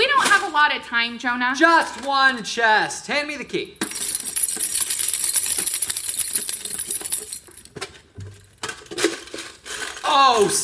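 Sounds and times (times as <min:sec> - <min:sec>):
speech: 0:00.6 - 0:03.8, 0:10.1 - 0:10.6
dense pile of coins jingling and clinking: 0:03.8 - 0:07.7.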